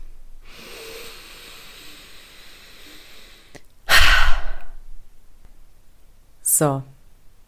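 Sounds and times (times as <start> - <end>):
long steady deep inhale: 0.4 - 4.8
loud forceful exhale: 0.4 - 4.8
speech: 6.6 - 6.9.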